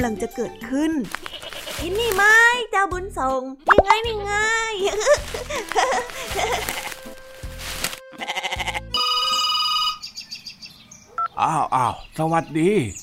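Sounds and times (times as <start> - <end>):
speech: 0.0 - 6.9, 11.4 - 13.0
goat bleating: 1.1 - 2.2, 6.0 - 7.2, 8.1 - 9.0
laughter: 4.8 - 6.8
telephone ringing with an incoming call: 9.0 - 10.1.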